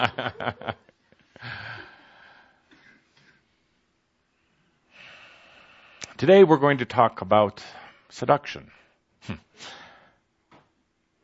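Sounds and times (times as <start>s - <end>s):
speech: 0.0s - 0.8s, 6.2s - 9.8s
laughter: 0.0s - 1.4s
deep breaths taken by a group: 1.3s - 3.4s, 4.3s - 6.0s, 9.6s - 10.2s.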